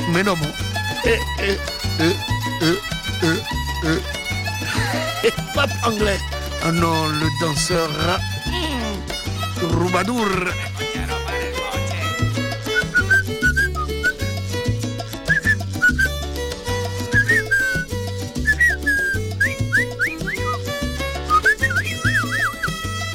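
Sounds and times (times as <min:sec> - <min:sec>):
bouncy musical backing with a steady bass beat: 0:00.0 - 0:23.1
speech: 0:00.1 - 0:04.2, 0:05.0 - 0:08.6, 0:09.6 - 0:10.7
laughter: 0:01.0 - 0:06.0, 0:10.3 - 0:12.8
person whistling a lively sliding melody: 0:12.6 - 0:14.2, 0:15.2 - 0:16.2, 0:17.1 - 0:20.7, 0:21.3 - 0:22.8.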